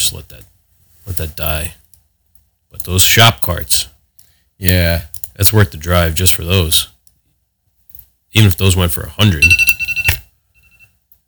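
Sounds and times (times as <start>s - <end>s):
speech: 0.1s - 1.8s, 2.7s - 4.0s, 4.6s - 6.9s, 8.3s - 9.7s
phone alarm electronic tone: 9.4s - 10.9s.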